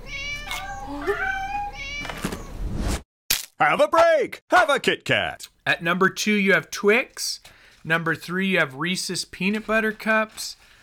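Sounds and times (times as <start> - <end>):
several cats meowing: 0.0 - 2.3
speech: 3.6 - 10.7.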